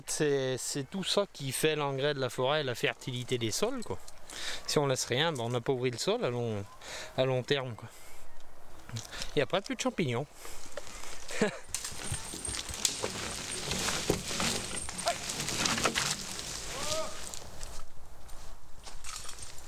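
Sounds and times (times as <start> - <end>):
speech: 0.1 - 8.0, 8.9 - 10.6, 11.3 - 12.2
horse hooves clopping on soft forest ground: 10.3 - 19.6
rustling: 10.4 - 19.6.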